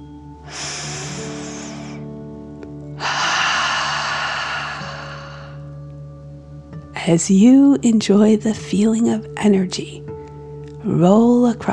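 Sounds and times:
soft sustained musical drone: 0.0 - 7.6
slow deep breath in and out: 0.4 - 2.3, 3.0 - 5.7
speech: 7.1 - 10.1, 10.8 - 11.7.

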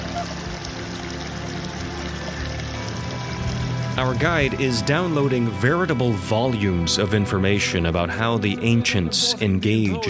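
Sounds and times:
flowing mountain brook rushing and gurgling: 0.0 - 5.6
speech: 4.0 - 10.0.

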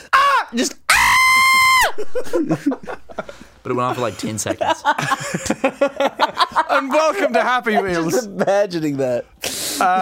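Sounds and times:
loud human shriek: 0.0 - 2.0
speech: 0.5 - 0.8, 2.1 - 2.9, 3.6 - 9.9
laughter: 1.8 - 9.0.

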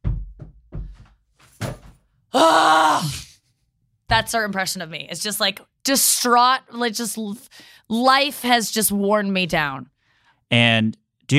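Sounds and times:
dull thumps: 0.0 - 2.0
speech: 2.3 - 3.2, 4.1 - 9.9, 10.5 - 11.3.

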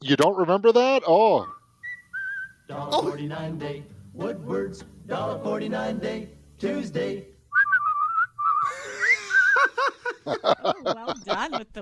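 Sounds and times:
speech: 0.0 - 1.6, 2.7 - 7.3, 10.3 - 11.8
person whistling a tune: 1.4 - 2.7, 7.5 - 9.6
snickering laughter: 8.6 - 11.7.

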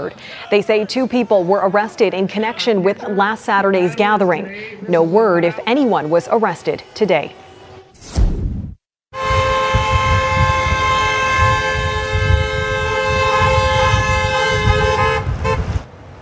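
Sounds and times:
speech: 0.0 - 7.4
vehicle horn blaring in protest convoy: 6.6 - 8.0, 9.1 - 15.8
rumble of engines and traffic: 9.2 - 16.1.

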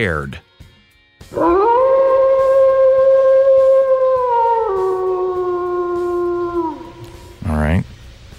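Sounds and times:
speech: 0.0 - 0.5
long mournful wolf howl in a song intro: 1.3 - 7.5.

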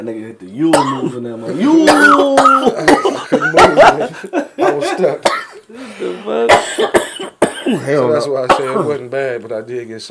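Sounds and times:
speech: 0.0 - 10.1
person vocalizing: 1.5 - 3.3
person coughing sharply: 1.8 - 3.4, 5.2 - 5.6, 6.5 - 9.0
laughter: 2.0 - 5.2.

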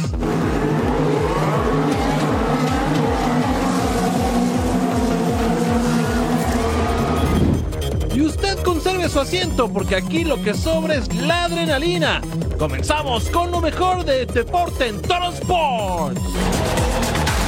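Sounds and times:
race car engines roaring on circuit: 0.0 - 10.5
speech: 9.2 - 16.8.

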